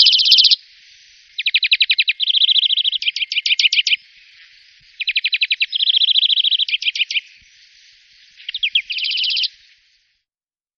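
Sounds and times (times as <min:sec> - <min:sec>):
European greenfinch song of fast ringing trills: 0:00.0 - 0:09.9.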